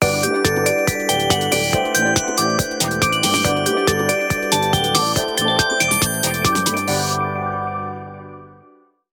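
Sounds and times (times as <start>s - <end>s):
Meizu MX2 techno ringtone: 0.0s - 7.2s.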